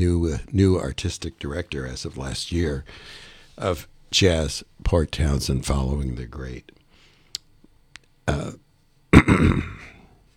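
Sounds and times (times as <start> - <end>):
speech: 0.0 - 6.8, 8.3 - 8.6, 9.2 - 9.8
person coughing: 8.3 - 10.1.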